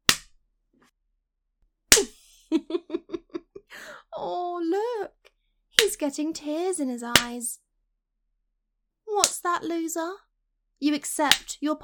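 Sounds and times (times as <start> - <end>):
hand slapping a face: 0.0 - 0.4, 1.9 - 2.2, 5.8 - 6.0, 7.1 - 7.4, 9.2 - 9.4, 11.3 - 11.6
laughter: 2.1 - 3.7
speech: 6.0 - 7.6, 9.4 - 11.8.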